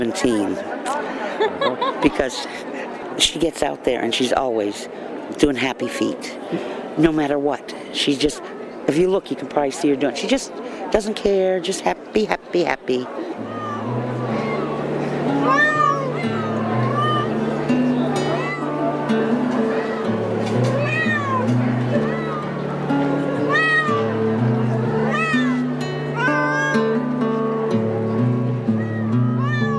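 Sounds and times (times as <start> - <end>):
speech: 0.0 - 0.8, 1.4 - 13.6
busy murmur of voices: 0.0 - 29.7
laughter: 0.9 - 3.2
many exotic cats meowing at a cat show in a gymnasium: 13.4 - 17.4, 18.1 - 18.8, 19.6 - 22.6, 23.2 - 24.2, 24.9 - 27.0, 28.7 - 29.7.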